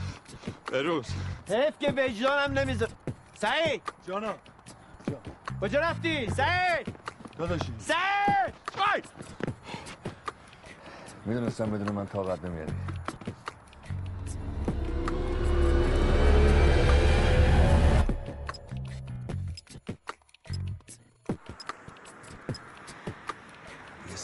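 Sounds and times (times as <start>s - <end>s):
speech: 0.7s - 4.5s, 5.1s - 9.1s, 11.2s - 13.0s
car with low rumbling engine approaching: 13.8s - 19.0s.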